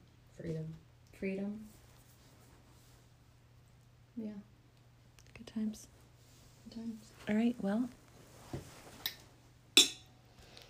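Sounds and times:
speech: 0.4s - 1.7s, 5.5s - 5.9s, 6.7s - 8.0s
sharp ringing clink of glass or metal struck together: 9.8s - 10.2s.

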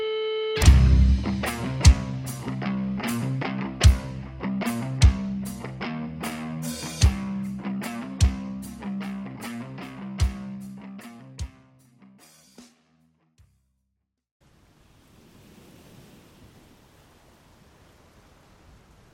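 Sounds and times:
struck musical notes: 0.6s - 11.5s
cold wind and driving rain storm: 14.4s - 19.1s.

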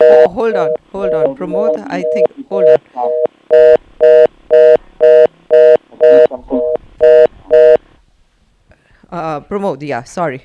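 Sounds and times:
electronic phone dialing beeps on a phone line: 0.0s - 7.8s
speech: 0.3s - 3.8s, 9.6s - 10.4s.

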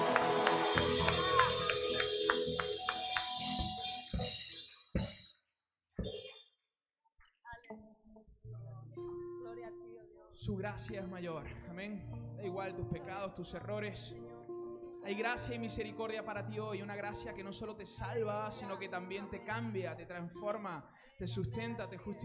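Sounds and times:
audience applauding: 0.0s - 3.8s
speech: 10.4s - 14.3s, 15.1s - 22.2s.

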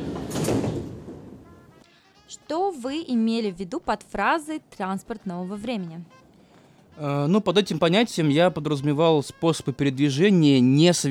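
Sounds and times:
metro train sliding doors whooshing shut: 0.0s - 1.6s
speech: 2.3s - 6.2s, 7.0s - 11.0s.

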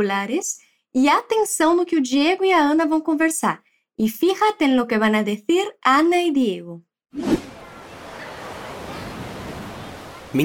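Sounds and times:
speech: 0.0s - 7.4s
ocean waves breaking on a beach at Florianópolis: 7.2s - 10.4s.

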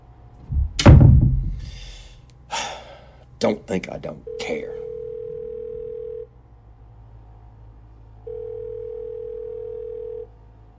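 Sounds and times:
door slamming shut with a heavy boom: 0.5s - 1.8s
speech: 3.4s - 4.8s.

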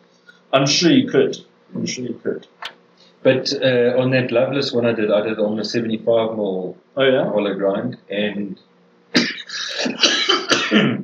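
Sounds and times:
speech: 0.5s - 9.2s, 10.7s - 10.9s
smoker's cough: 9.1s - 11.0s.

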